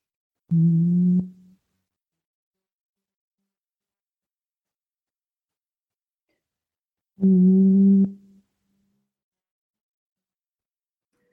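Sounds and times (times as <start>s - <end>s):
person humming on a low pitch: 0.5s - 1.4s, 7.2s - 8.2s.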